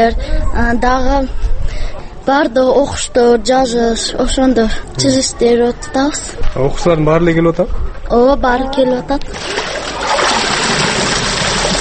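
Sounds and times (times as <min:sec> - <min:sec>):
speech: 0:00.0 - 0:09.8
water sloshing as laundry is washed by hand near a water source: 0:09.3 - 0:11.8.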